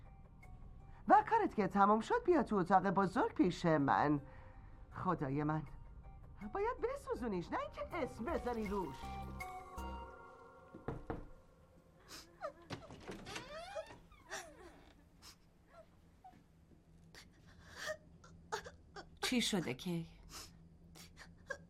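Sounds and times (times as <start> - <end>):
speech: 1.3 - 4.4, 5.0 - 5.8, 6.4 - 9.5, 19.3 - 20.2
child crying and sobbing: 17.8 - 19.2.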